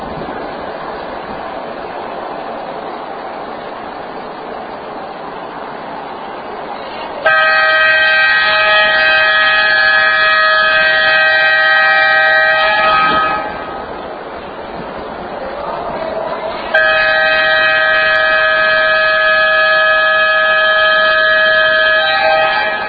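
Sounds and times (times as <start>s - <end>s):
all clear horn pattern: 7.2s - 13.8s, 16.7s - 22.8s.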